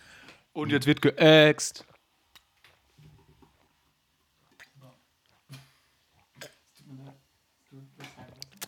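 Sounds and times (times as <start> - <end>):
speech: 0.6 - 1.9
person gulping down water: 4.5 - 6.7.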